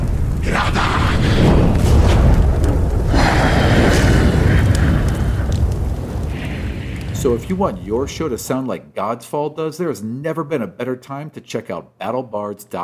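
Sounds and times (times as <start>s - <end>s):
roaring fire sound effect for a fire elemental in combat, crackling bursts and deep booms: 0.0s - 8.8s
speech: 7.2s - 12.8s.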